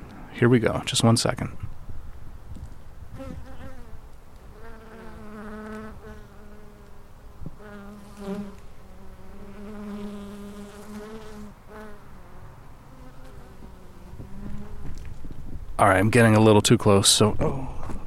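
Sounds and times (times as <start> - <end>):
speech: 0.4 - 1.7, 15.9 - 17.8
bees buzzing around a hummingbird feeder: 3.2 - 14.9.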